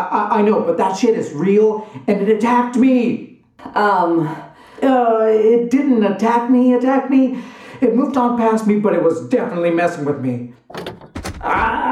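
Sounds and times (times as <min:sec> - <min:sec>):
speech: 0:00.0 - 0:11.7
door being forced shut with thumps and scrapes: 0:10.6 - 0:11.8.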